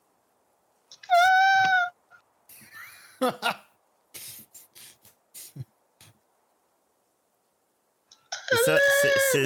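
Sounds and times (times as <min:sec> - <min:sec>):
speech: 0:03.2 - 0:03.6
voice imitating a frightened cry with a high wavering wail: 0:08.5 - 0:09.4.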